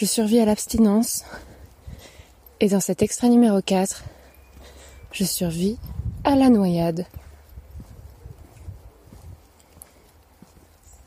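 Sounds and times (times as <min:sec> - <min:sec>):
speech: 0:00.0 - 0:01.5, 0:02.6 - 0:04.2, 0:05.1 - 0:07.2
footsteps walking on a country road: 0:00.0 - 0:11.0
quiet outdoor ambience: 0:00.0 - 0:11.0
faint high chirp: 0:04.2 - 0:05.5.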